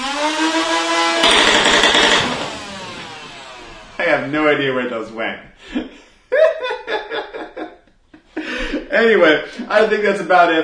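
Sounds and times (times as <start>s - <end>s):
motorized foam ball blaster motor spinning up: 0.0s - 4.0s
full-auto foam ball blaster firing: 1.2s - 2.5s
speech: 4.2s - 6.0s, 8.9s - 10.6s
laughter: 5.7s - 8.9s.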